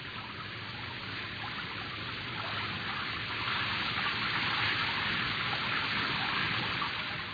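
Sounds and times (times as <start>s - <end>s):
steady rain on a tin roof: 0.0s - 7.3s.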